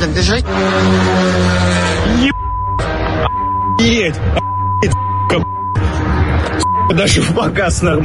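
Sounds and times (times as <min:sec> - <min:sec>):
speech: 0:00.0 - 0:05.5, 0:06.5 - 0:08.0
car alarms set off by explosions during a drone attack: 0:02.2 - 0:07.2.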